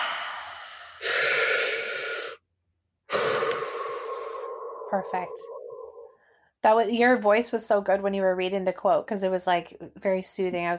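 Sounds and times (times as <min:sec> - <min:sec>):
deep human breath: 0:00.0 - 0:02.4, 0:03.1 - 0:06.6
speech: 0:04.9 - 0:05.6, 0:06.6 - 0:10.7.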